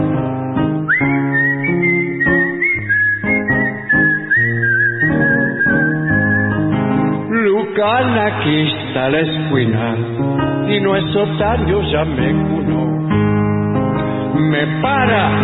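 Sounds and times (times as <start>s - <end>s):
rhythmic instrumental accompaniment with steady chords: 0.0s - 15.4s
person whistling a tango melody: 0.8s - 6.8s
speech: 7.8s - 13.4s, 14.3s - 15.4s.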